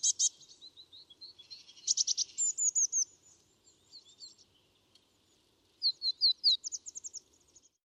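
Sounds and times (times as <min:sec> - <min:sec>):
Eurasian blue tit calls, Cyanistes caeruleus: 0:00.0 - 0:00.5, 0:01.3 - 0:03.1, 0:05.8 - 0:07.2.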